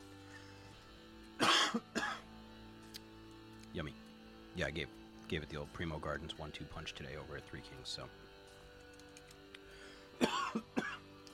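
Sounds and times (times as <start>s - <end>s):
person coughing after smoking: 1.4s - 2.2s, 10.2s - 11.0s
speech: 3.8s - 4.0s, 4.6s - 8.2s.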